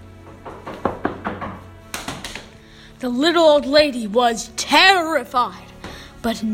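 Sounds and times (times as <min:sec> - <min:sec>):
firm knocking on a door: 0:00.2 - 0:02.4
speech: 0:03.0 - 0:06.5.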